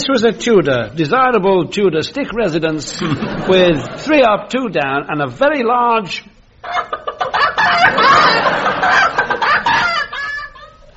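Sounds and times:
speech: 0:00.0 - 0:09.2
laughter: 0:02.9 - 0:04.2, 0:06.6 - 0:10.9
chicken clucking and squawking: 0:06.6 - 0:10.8.

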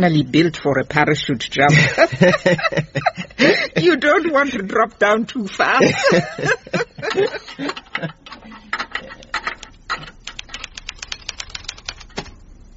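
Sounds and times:
speech: 0:00.0 - 0:08.2
laughter: 0:01.7 - 0:04.0, 0:05.7 - 0:08.3
typewriter keys clacking: 0:07.1 - 0:12.4.

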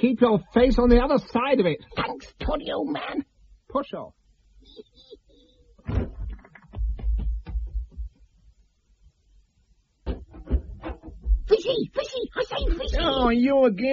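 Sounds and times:
speech: 0:00.0 - 0:04.2, 0:11.6 - 0:13.9
door shutting with a solid thump: 0:05.8 - 0:07.0, 0:10.0 - 0:11.4
knocks and rattles: 0:05.8 - 0:08.4, 0:10.0 - 0:11.6.

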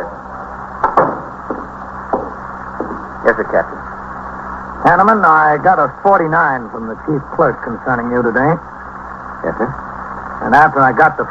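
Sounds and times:
steady low hum: 0:00.0 - 0:11.2
door pushed shut with double thump and latch click: 0:00.8 - 0:03.1
speech: 0:03.3 - 0:03.8, 0:04.8 - 0:08.8, 0:09.4 - 0:09.8, 0:10.4 - 0:11.2.

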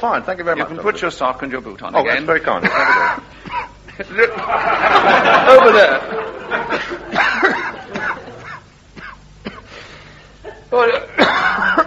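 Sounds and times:
speech: 0:00.0 - 0:03.3, 0:04.0 - 0:07.0, 0:10.7 - 0:11.2
laughter: 0:02.5 - 0:08.7
man coughing harshly in rough hacking bursts: 0:02.6 - 0:04.0, 0:06.8 - 0:09.8, 0:10.4 - 0:11.8.

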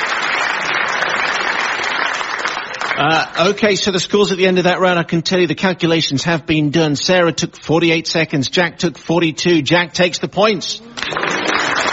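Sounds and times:
audience applause after a round of an anecdote game: 0:00.0 - 0:03.4, 0:11.0 - 0:11.9
speech: 0:03.0 - 0:11.3.

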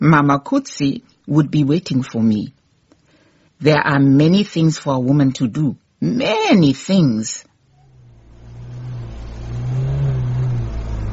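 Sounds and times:
speech: 0:00.0 - 0:02.6, 0:03.6 - 0:07.5
car engine revving in a garage: 0:07.7 - 0:11.1.

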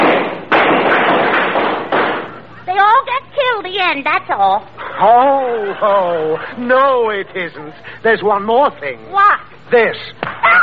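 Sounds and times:
loud gunfire: 0:00.0 - 0:02.4
speech: 0:03.6 - 0:10.6.

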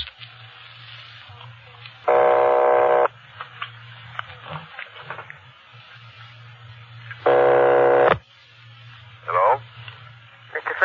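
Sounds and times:
faint telephone line hum: 0:00.0 - 0:10.8
buzzy telephone ringback tone over the line: 0:02.1 - 0:03.1, 0:07.3 - 0:08.2.

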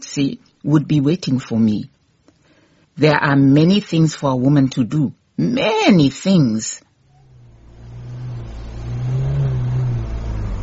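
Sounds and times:
speech: 0:00.2 - 0:02.0, 0:03.0 - 0:06.8
car engine revving in a garage while being worked on: 0:07.1 - 0:10.6.

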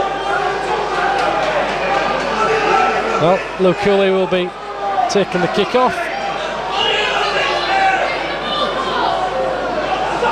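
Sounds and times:
stadium crowd noise: 0:00.0 - 0:10.3
large stadium crowd clapping: 0:00.7 - 0:03.1
speech: 0:03.2 - 0:06.0.

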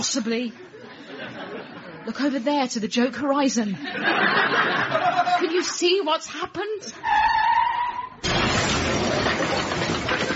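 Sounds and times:
speech: 0:00.0 - 0:07.4
laughter: 0:00.6 - 0:02.2, 0:03.8 - 0:06.0, 0:09.1 - 0:10.3
car tires screeching: 0:07.0 - 0:08.2
clatter of smashing and rattling debris: 0:08.2 - 0:10.3
loud car crash: 0:08.2 - 0:10.3.

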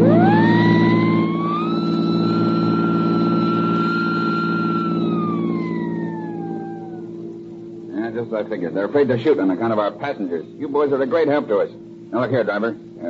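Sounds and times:
police car siren wailing during chase: 0:00.0 - 0:07.5
heavy engine rumble: 0:00.0 - 0:08.2
speech: 0:08.3 - 0:13.0.

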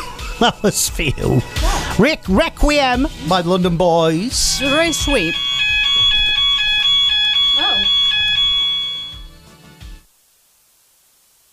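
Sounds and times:
speech: 0:00.4 - 0:05.5
loud electronic alarm beeping in high tones: 0:04.4 - 0:09.3.

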